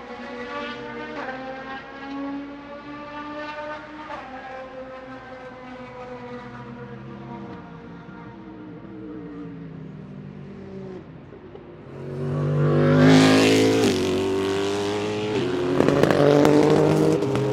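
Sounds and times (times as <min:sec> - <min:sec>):
racing car engines droning through gear changes: 0:00.0 - 0:17.5
loud bright racing car revving hard: 0:12.0 - 0:17.5.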